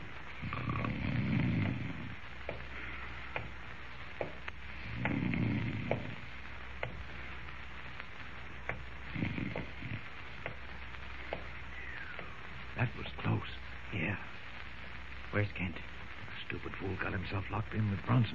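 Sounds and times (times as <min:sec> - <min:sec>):
faint scattered clicks and ticks: 0:00.0 - 0:18.2
man snoring: 0:00.4 - 0:02.2, 0:04.8 - 0:06.3, 0:09.0 - 0:10.1
speech: 0:15.4 - 0:15.9, 0:16.5 - 0:18.3.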